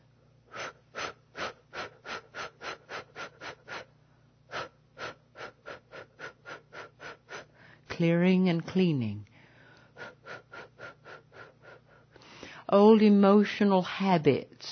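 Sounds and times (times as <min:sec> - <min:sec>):
forceful deliberate deep breathing: 0:00.5 - 0:07.9, 0:09.3 - 0:12.7
speech: 0:08.0 - 0:09.3, 0:12.7 - 0:14.7.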